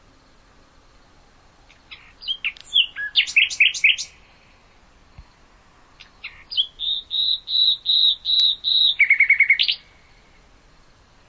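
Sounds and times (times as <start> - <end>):
nightingale song of pure whistled notes and rapid lower run: 1.7 - 4.2, 6.0 - 10.4.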